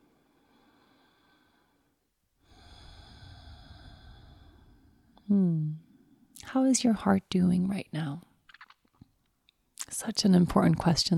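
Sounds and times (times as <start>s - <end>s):
slow steady breathing in through the nose: 0.1s - 5.2s
speech: 6.5s - 8.3s, 10.0s - 11.1s.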